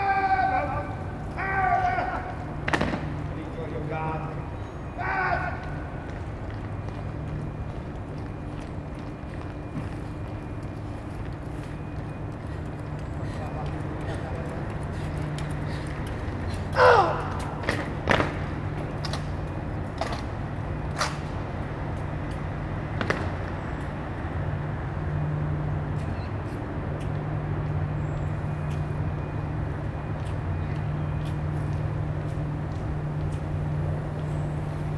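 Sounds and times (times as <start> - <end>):
shouted military drill commands: 0.0 - 6.1, 16.7 - 17.8
steady low engine-like rumble: 0.0 - 34.9.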